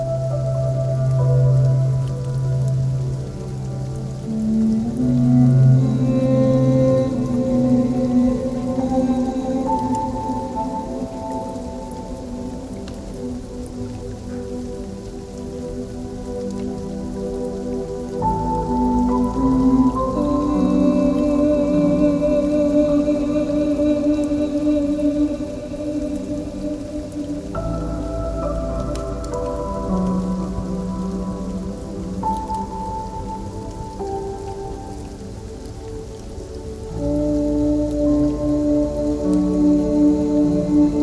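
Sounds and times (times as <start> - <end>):
steady rain pattering: 0.0 - 41.0.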